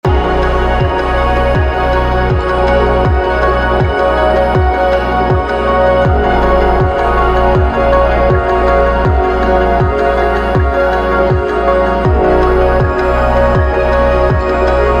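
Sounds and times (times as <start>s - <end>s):
ambient sound: 0.0s - 14.9s.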